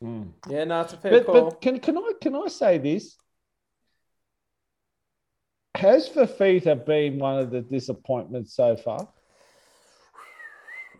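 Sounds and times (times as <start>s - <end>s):
speech: 0.0s - 3.2s, 5.8s - 9.2s
person whistling a short steady tone: 10.2s - 10.9s.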